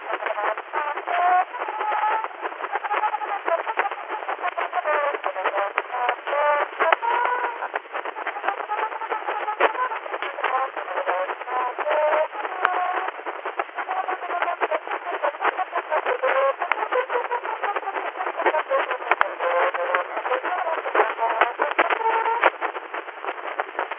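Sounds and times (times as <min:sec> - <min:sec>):
filtered music: 0:00.0 - 0:23.9.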